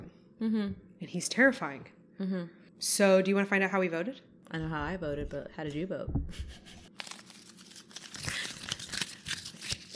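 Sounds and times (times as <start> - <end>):
speech: 0.4 - 6.8
paper being torn and crumpled: 6.9 - 9.9.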